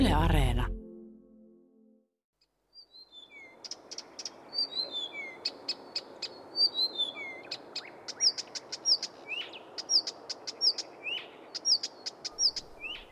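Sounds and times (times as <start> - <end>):
speech: 0.1 - 0.8
Blyth's reed warbler singing: 2.8 - 13.0.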